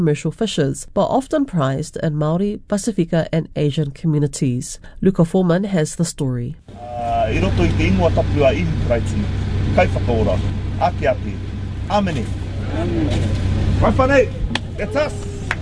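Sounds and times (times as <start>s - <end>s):
speech: 0.0s - 15.3s
people talking and calling out: 6.7s - 15.6s
queue of cars idling in a car park: 6.7s - 15.6s.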